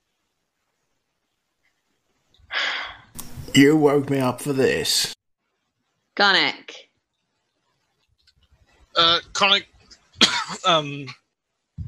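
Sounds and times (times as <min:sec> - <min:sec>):
speech: 0:03.6 - 0:05.2, 0:06.2 - 0:06.9, 0:09.0 - 0:09.7, 0:10.5 - 0:11.2
rough cough trailing into a strained voiced rasp: 0:10.2 - 0:10.6.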